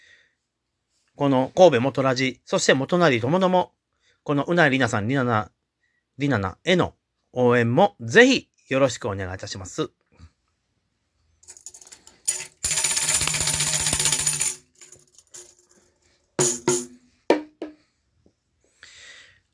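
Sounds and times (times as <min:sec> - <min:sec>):
speech: 0:01.2 - 0:05.6, 0:06.2 - 0:10.0
tambourine jingling shake: 0:11.4 - 0:15.8, 0:16.4 - 0:16.9
mini bongo drum taps and hits: 0:16.4 - 0:17.8.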